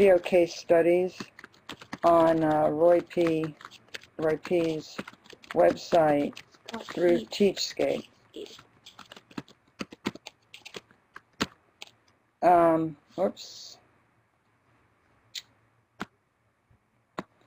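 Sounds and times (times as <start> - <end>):
speech: 0.0 - 8.6, 12.4 - 13.8
typing on a computer keyboard: 1.1 - 12.0.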